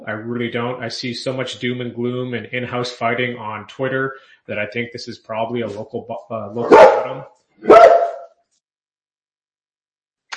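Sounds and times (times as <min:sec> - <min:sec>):
speech: 0:00.0 - 0:08.0
dog barking: 0:06.6 - 0:08.3.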